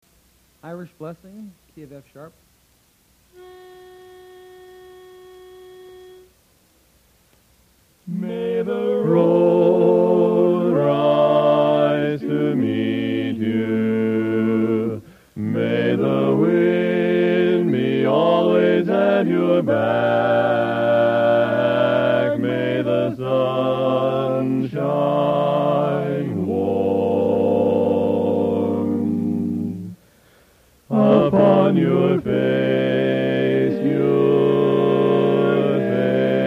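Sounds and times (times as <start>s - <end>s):
choir singing: 8.1s - 30.0s, 30.9s - 36.4s.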